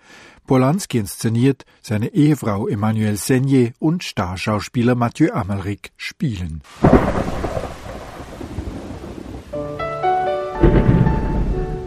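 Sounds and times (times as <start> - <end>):
speech: 0.5 - 7.5
steady rain: 6.6 - 11.8
rolling stage thunder: 6.8 - 9.6, 10.6 - 11.8
sustained orchestral music: 9.5 - 11.8.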